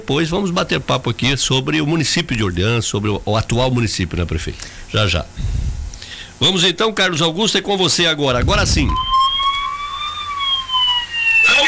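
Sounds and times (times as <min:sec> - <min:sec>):
speech: 0:00.1 - 0:05.6, 0:06.4 - 0:09.1
burst of broadband noise: 0:00.8 - 0:11.6
fire truck siren wailing with a slowly falling tone: 0:08.4 - 0:11.6.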